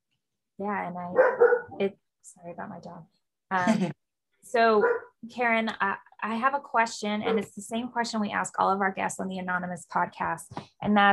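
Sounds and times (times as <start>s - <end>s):
speech: 0.6s - 11.1s
dog barking indoors: 1.1s - 1.8s, 4.8s - 5.1s.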